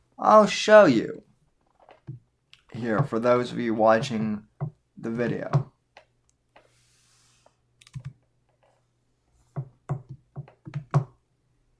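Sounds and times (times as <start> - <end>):
speech: 0.2 - 1.3, 2.1 - 5.7
computer keyboard keystrokes: 7.8 - 8.2.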